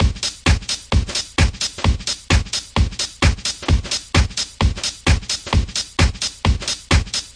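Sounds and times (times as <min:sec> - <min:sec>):
130 bpm crunchy handbag house drum loops and breaks: 0:00.0 - 0:07.3.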